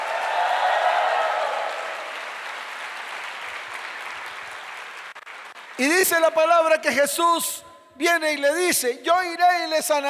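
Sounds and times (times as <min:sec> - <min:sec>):
audience cheering: 0:00.0 - 0:05.6
audience clapping: 0:00.0 - 0:06.4
speech: 0:05.8 - 0:10.0.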